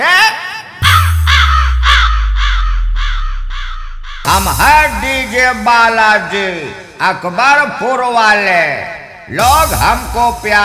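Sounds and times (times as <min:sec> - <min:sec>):
crow cawing harshly: 0:00.8 - 0:04.3
deep sustained bass rumble: 0:00.8 - 0:06.5
speech: 0:04.3 - 0:10.6.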